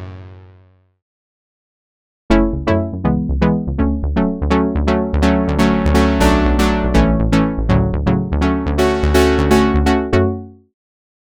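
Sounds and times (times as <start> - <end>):
plucked notes: 2.3 - 10.4.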